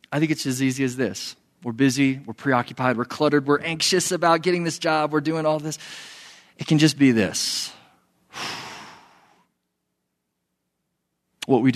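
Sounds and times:
speech: 0.1 - 7.8, 8.4 - 8.6, 11.5 - 11.7
slow deep breath: 5.8 - 6.6, 8.3 - 9.5.

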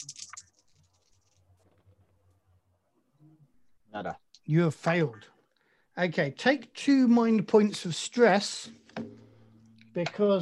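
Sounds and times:
dice tumbling across a hard surface: 0.0 - 1.4
speech: 3.9 - 5.4, 6.0 - 9.1, 10.0 - 10.4.

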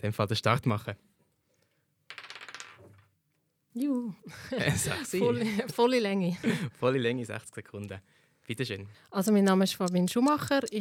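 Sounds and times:
speech: 0.0 - 1.1, 3.7 - 10.7
small die rolled in a dice game clattering across a hard tabletop: 2.1 - 3.1
laughter: 4.3 - 5.8.

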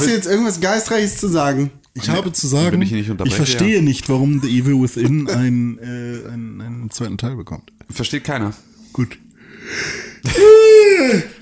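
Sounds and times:
speech: 0.0 - 11.3
loud drawn-out yawn: 9.6 - 11.3.

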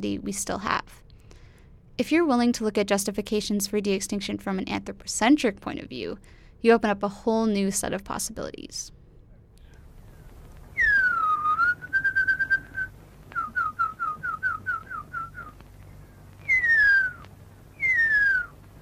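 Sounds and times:
speech: 0.0 - 1.0, 2.0 - 9.0
human whistling imitation of huia bird call: 10.8 - 15.6, 16.4 - 17.2, 17.8 - 18.6.

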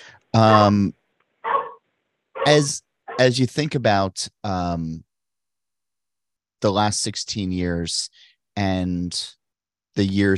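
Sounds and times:
dog barking: 0.4 - 0.8, 1.4 - 1.8, 2.4 - 3.3
speech: 0.4 - 1.0, 2.4 - 5.1, 6.6 - 9.4, 10.0 - 10.3.

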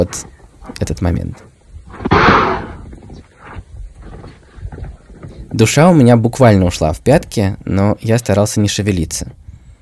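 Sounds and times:
speech: 0.0 - 1.5, 5.5 - 9.4
rustling and low thumps of an elephant shaking its head: 0.0 - 6.2
large African elephant snorting: 1.9 - 4.3.

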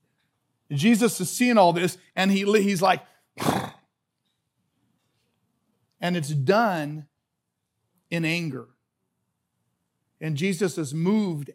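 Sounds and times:
speech: 0.7 - 3.6, 6.0 - 7.1, 8.1 - 8.8, 10.2 - 11.5
person imitating a horse snorting: 3.4 - 3.9.

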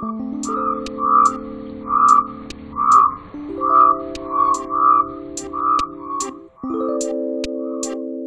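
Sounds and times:
sustained musical tones: 0.0 - 8.2
black rain frog chirping: 0.4 - 6.4.

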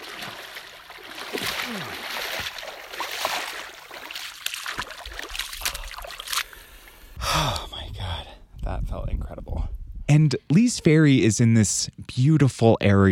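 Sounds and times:
water splashing and churning: 0.0 - 7.1
person gasping and breathing heavily: 5.6 - 7.8
speech: 10.1 - 13.1.

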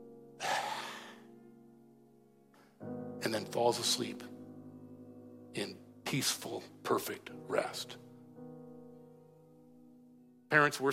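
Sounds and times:
voice imitating an exhausted infant's gasp before sleep: 0.4 - 1.2
speech: 3.2 - 4.4, 5.6 - 8.1, 10.5 - 10.9.

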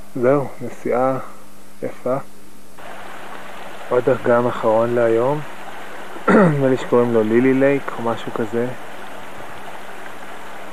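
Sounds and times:
speech: 0.2 - 2.3, 3.9 - 5.5, 6.3 - 8.9
stream water flowing out of a lake into another lake: 2.8 - 10.7.

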